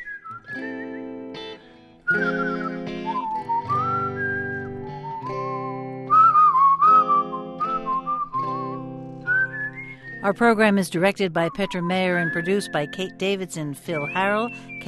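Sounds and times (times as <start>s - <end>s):
slow sliding whistled melody: 0.0s - 14.8s
strummed guitar chords: 0.3s - 10.2s
speech: 10.2s - 14.8s.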